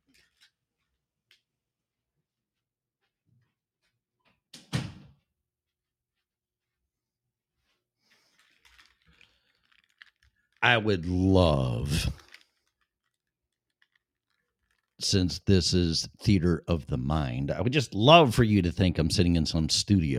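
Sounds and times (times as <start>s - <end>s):
bedroom door thudding shut: 4.6s - 5.2s
speech: 10.6s - 12.2s, 15.0s - 20.1s.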